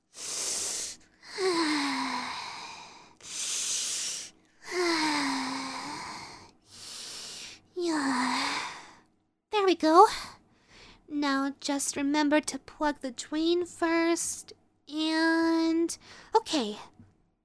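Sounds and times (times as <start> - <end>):
deep frightened breathing of a scared person: 0.0 - 9.1
speech: 9.8 - 10.3, 11.5 - 17.0.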